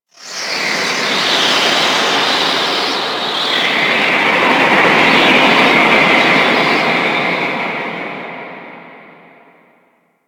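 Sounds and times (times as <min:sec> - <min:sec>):
space wind ambience: 0:00.3 - 0:09.4.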